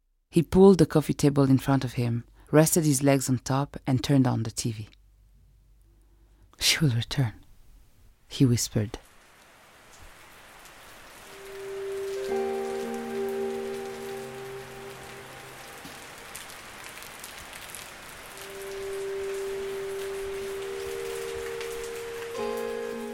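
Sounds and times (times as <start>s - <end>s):
speech: 0.3s - 5.0s, 6.6s - 7.4s, 8.3s - 9.0s
rain pattering on a hard surface: 8.9s - 23.1s
soft sustained tones: 11.3s - 16.7s, 18.2s - 23.1s.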